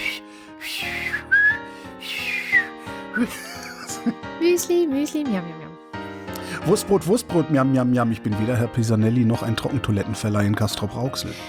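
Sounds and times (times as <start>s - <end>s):
person whistling a warbling tune imitating an art whistler: 0.0s - 2.9s
laughter: 3.2s - 4.2s
speech: 3.2s - 5.8s, 6.6s - 11.4s.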